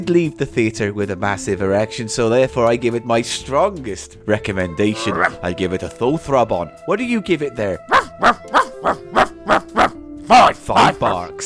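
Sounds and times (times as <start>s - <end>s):
speech: 0.0s - 11.4s
person imitating dog barking: 5.0s - 5.4s, 7.9s - 11.2s.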